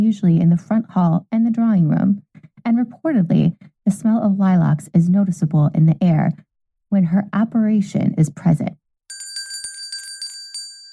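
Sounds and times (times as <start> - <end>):
speech: 0.0 - 8.8
small servants' call bells ringing at the Octagon House in Washington, D.C.: 9.1 - 10.9.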